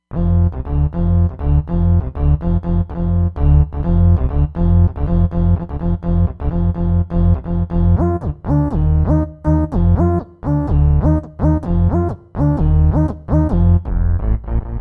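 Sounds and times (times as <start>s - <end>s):
Roland Fantom XR party bass synth: 0.1s - 14.7s.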